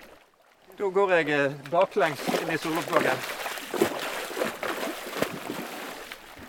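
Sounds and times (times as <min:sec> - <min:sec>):
person wading backwards through shallow cold seawater: 0:00.0 - 0:06.4
speech: 0:00.8 - 0:03.4.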